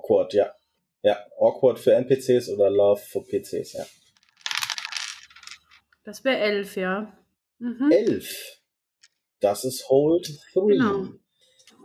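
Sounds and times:
speech: 0.1s - 4.0s, 6.0s - 8.6s, 9.4s - 11.2s
dice tumbling across a hard surface: 4.2s - 5.8s.

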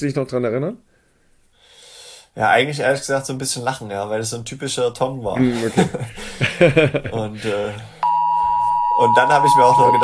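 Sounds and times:
speech: 0.0s - 0.9s, 2.4s - 7.9s, 9.0s - 10.0s
laughter: 5.4s - 7.9s
mobile phone alert tone set off by a siren test signal: 8.0s - 10.0s.

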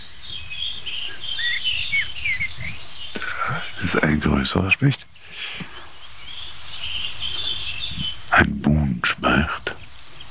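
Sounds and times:
blackbirds giving scolding alarm calls: 0.0s - 10.2s
soft steady hiss: 0.0s - 10.2s
speech: 3.8s - 5.1s.

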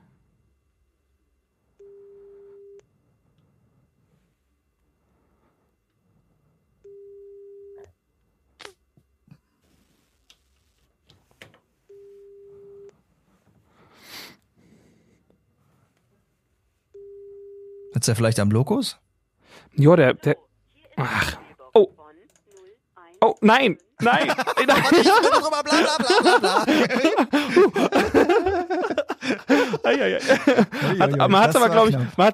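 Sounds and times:
telephone ringback tone during an unanswered call: 1.8s - 2.8s, 6.9s - 7.8s, 11.9s - 12.9s, 17.0s - 17.9s
speech: 18.0s - 19.0s, 19.6s - 22.0s, 23.2s - 32.3s
laughter: 24.0s - 32.3s.

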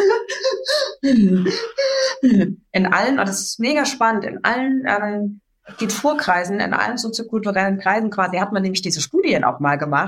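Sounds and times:
voice imitating a child's sobbing with sigh breathing through the nose: 0.0s - 2.6s
speech: 1.0s - 10.0s.

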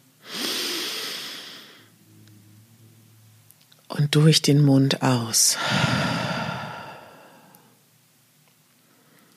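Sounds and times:
deep inhale through the nose: 0.2s - 1.9s, 5.6s - 7.8s
speech: 4.0s - 6.2s.

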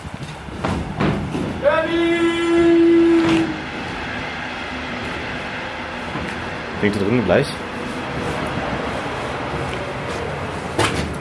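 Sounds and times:
rumbling noise: 0.0s - 11.1s
train passing at former railway grounds: 0.0s - 11.1s
long steady train horn blast: 1.7s - 3.8s
speech: 6.8s - 7.7s.

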